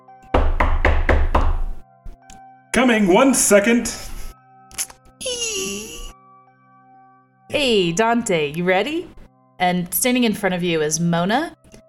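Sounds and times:
firm knocks on a wooden door: 0:00.3 - 0:01.8
speech: 0:02.8 - 0:04.1, 0:07.6 - 0:11.6.

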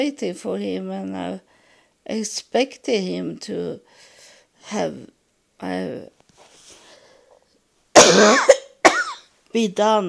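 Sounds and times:
speech: 0:00.0 - 0:06.2, 0:08.1 - 0:08.6, 0:09.5 - 0:10.0
person coughing in harsh loud bursts: 0:08.0 - 0:09.3.

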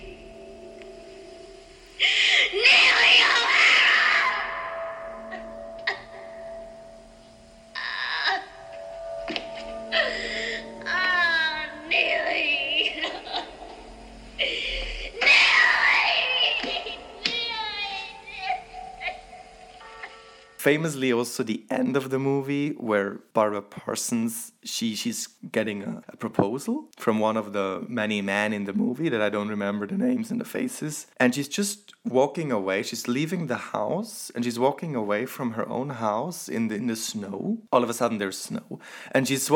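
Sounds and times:
woman screaming and wailing in a film scene: 0:02.0 - 0:06.0, 0:09.9 - 0:13.4, 0:14.4 - 0:19.5
speech: 0:20.7 - 0:39.5.

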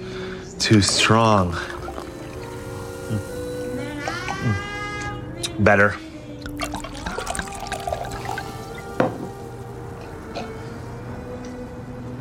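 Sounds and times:
speech: 0:00.6 - 0:01.8, 0:03.1 - 0:03.3, 0:05.6 - 0:06.0
water poured into a glass of drink: 0:00.8 - 0:04.2, 0:06.4 - 0:09.5.

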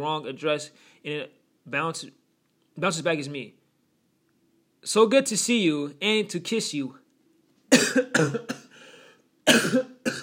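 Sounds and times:
speech: 0:00.0 - 0:02.2, 0:02.8 - 0:03.6, 0:04.8 - 0:07.0, 0:07.7 - 0:08.6, 0:09.5 - 0:10.2
person coughing in sharp harsh bursts: 0:07.7 - 0:08.8, 0:09.5 - 0:10.2.

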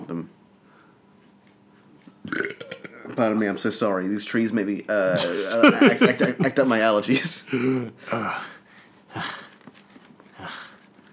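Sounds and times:
speech: 0:03.2 - 0:08.6
heavy breathy panting: 0:07.6 - 0:11.1.

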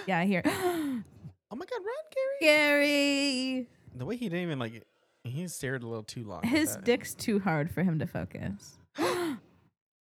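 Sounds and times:
speech: 0:00.0 - 0:09.4
two people gasping: 0:09.0 - 0:09.5.

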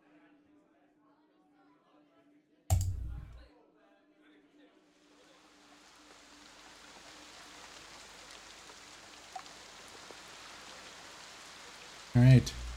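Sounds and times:
rain falling at nightfall: 0:05.2 - 0:12.7
speech: 0:12.2 - 0:12.6.

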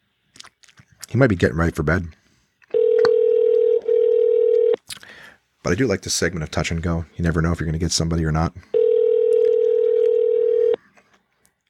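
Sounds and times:
speech: 0:01.1 - 0:02.2, 0:05.6 - 0:08.8
phone ringing tone: 0:02.7 - 0:04.8, 0:08.7 - 0:10.8.

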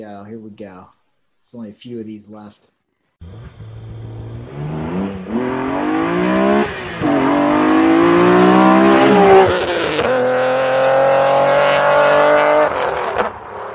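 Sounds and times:
speech: 0:00.0 - 0:03.7
Nissan 350Z sports car engine revving through gear pulls: 0:03.2 - 0:13.7.

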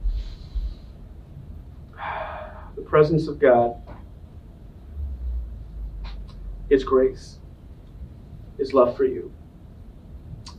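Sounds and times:
deep inhale: 0:00.0 - 0:01.0, 0:01.9 - 0:02.8
speech: 0:02.9 - 0:03.8, 0:06.7 - 0:07.4, 0:08.6 - 0:09.4.

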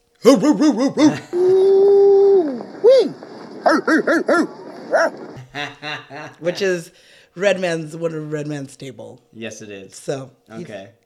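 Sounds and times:
man imitating a dog barking and howling: 0:00.2 - 0:01.2, 0:03.7 - 0:05.3
speech: 0:00.2 - 0:01.7, 0:02.8 - 0:11.0
laughter: 0:00.2 - 0:06.8.

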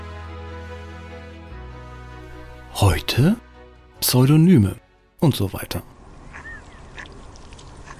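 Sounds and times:
speech: 0:02.8 - 0:03.4, 0:04.0 - 0:05.9
ducks quacking in short nasal bursts: 0:06.2 - 0:07.2, 0:07.8 - 0:07.9.

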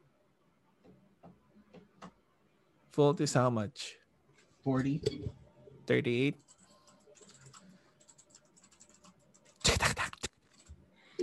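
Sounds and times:
speech: 0:03.0 - 0:04.0, 0:04.6 - 0:06.5
typing on a computer keyboard: 0:06.4 - 0:09.7, 0:10.3 - 0:10.8.

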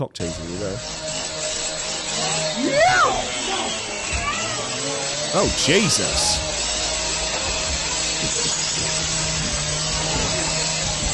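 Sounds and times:
speech: 0:00.0 - 0:01.2, 0:05.3 - 0:06.5, 0:08.2 - 0:09.1
power saw buzzing: 0:00.2 - 0:11.1
people screaming inside a pub during an attack: 0:02.2 - 0:06.4.

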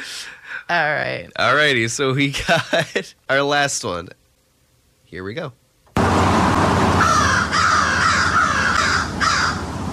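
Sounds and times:
steady hiss: 0:00.0 - 0:06.0
speech: 0:00.7 - 0:04.2, 0:05.1 - 0:05.6
crows cawing: 0:07.0 - 0:09.7.

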